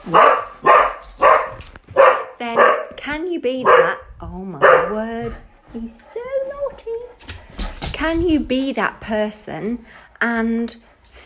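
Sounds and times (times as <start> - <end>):
dog barking: 0.0 - 3.0, 3.6 - 5.1
speech: 0.1 - 0.4, 2.4 - 6.2, 8.0 - 11.2.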